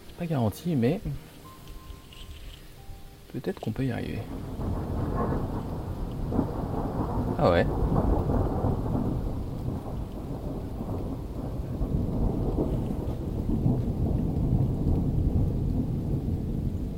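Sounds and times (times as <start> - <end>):
steady thunderstorm rain hissing: 0.0 - 16.9
speech: 0.2 - 1.3, 3.3 - 5.7, 7.4 - 8.1
brief sharp crackle: 1.0 - 16.9
deep rolling thunder rumbling: 4.1 - 16.9.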